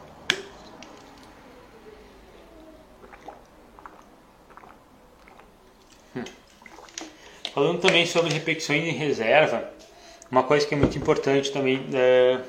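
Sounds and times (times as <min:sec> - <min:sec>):
person sipping water: 0:01.0 - 0:07.6
wet gulps and mouth sounds: 0:02.2 - 0:07.6
speech: 0:06.2 - 0:06.4, 0:07.6 - 0:12.4.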